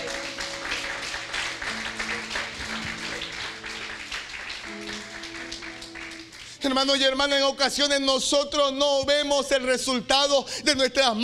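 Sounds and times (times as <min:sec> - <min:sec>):
sustained keyboard or organ chords: 0:00.0 - 0:05.5
crowd applauding: 0:00.0 - 0:07.2
speech: 0:06.6 - 0:11.2.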